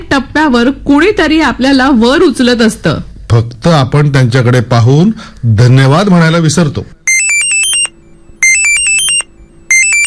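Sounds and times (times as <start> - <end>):
speech: 0.0 - 7.0
mobile phone ringtone of rapid high-pitched electronic beeps: 7.1 - 10.0.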